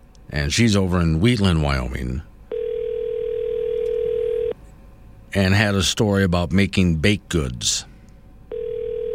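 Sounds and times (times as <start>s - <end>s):
speech: 0.3s - 2.3s, 5.3s - 7.9s
telephone ringback tone on an outgoing call: 2.5s - 4.6s, 8.5s - 9.1s.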